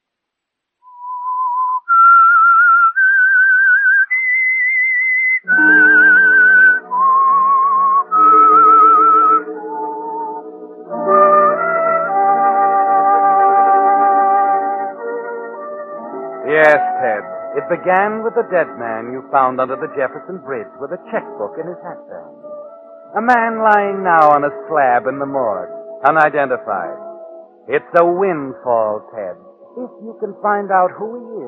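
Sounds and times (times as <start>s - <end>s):
person whistling a melody: 0.8s - 9.5s, 16.0s - 22.0s
full instrumental accompaniment: 5.4s - 31.4s
speech: 17.7s - 22.5s, 23.1s - 27.0s, 27.7s - 31.4s.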